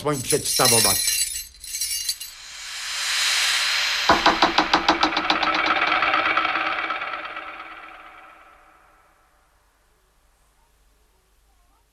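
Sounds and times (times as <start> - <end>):
speech: 0.0 - 1.3
bunch of keys thrown, clinking into a door lock: 0.0 - 2.3
hiss: 2.3 - 7.4
swishing rush: 2.3 - 9.4.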